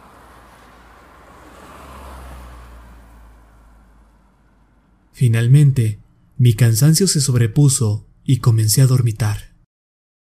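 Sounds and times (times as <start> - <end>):
car passing in front of a house: 0.0 - 5.1
speech: 5.2 - 9.5.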